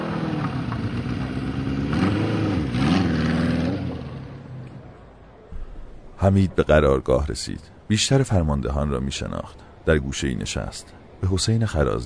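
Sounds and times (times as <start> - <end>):
trail motorcycle engine revving while riding off: 0.0 - 4.6
speech: 6.2 - 12.0.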